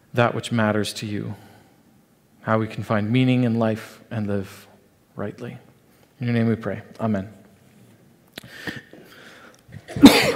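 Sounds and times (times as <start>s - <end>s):
speech: 0.2s - 1.5s, 2.4s - 7.4s, 8.4s - 8.9s
cough into the microphone: 9.8s - 10.3s.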